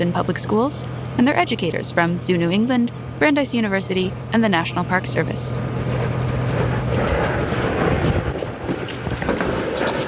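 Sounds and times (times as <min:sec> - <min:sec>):
speech: 0:00.0 - 0:06.2
small ferry boat engine droning with a low rumble: 0:00.0 - 0:10.0
gusts of wind buffeting the microphone: 0:05.6 - 0:10.0.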